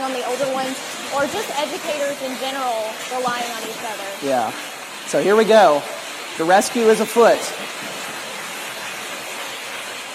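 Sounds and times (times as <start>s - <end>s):
flowing creek water: 0.0s - 10.1s
speech: 0.1s - 8.1s.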